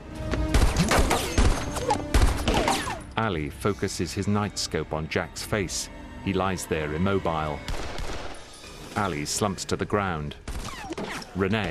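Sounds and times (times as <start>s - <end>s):
pistol gunshots in a firefight: 0.5s - 2.9s, 7.7s - 8.5s
speech: 3.2s - 7.8s, 9.0s - 11.7s.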